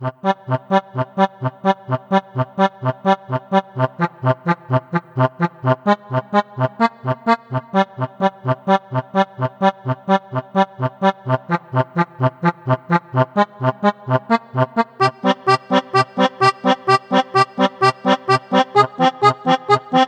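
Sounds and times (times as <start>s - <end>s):
accordion music: 0.0s - 20.0s
chiptune music: 10.6s - 20.0s.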